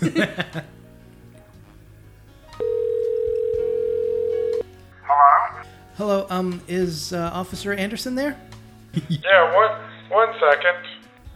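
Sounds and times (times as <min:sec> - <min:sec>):
laughter: 0:00.0 - 0:00.7, 0:08.9 - 0:09.3
rotary telephone dial tone: 0:02.6 - 0:04.6
speech: 0:06.0 - 0:10.9.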